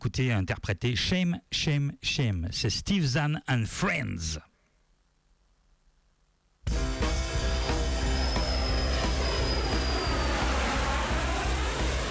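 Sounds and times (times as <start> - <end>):
speech: 0.0 - 4.5
airplane engine roaring overhead: 6.9 - 12.0.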